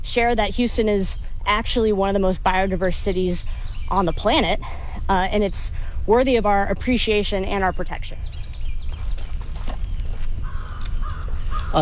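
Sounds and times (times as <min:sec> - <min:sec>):
low outdoor rumble: 0:00.0 - 0:11.8
speech: 0:00.2 - 0:08.4
crow cawing as it flies by: 0:10.4 - 0:11.8.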